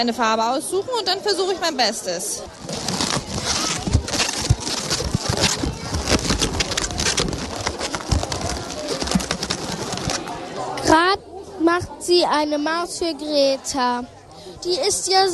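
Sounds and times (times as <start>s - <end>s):
speech: 0.0s - 3.5s, 11.8s - 15.3s
long balloon squeaking as twisted into a balloon animal: 2.5s - 10.3s.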